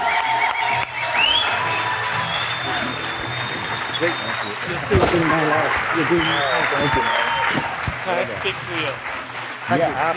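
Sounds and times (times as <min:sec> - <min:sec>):
crowd clapping and cheering: 0:00.0 - 0:10.1
whistles from the crowd: 0:00.1 - 0:05.2, 0:06.0 - 0:07.6
speech: 0:04.0 - 0:10.1.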